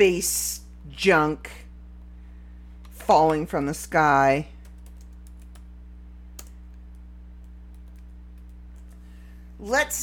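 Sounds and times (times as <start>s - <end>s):
speech: 0.0s - 1.6s, 3.1s - 4.5s, 9.6s - 10.0s
typing on a computer keyboard: 4.6s - 5.7s, 7.7s - 9.0s.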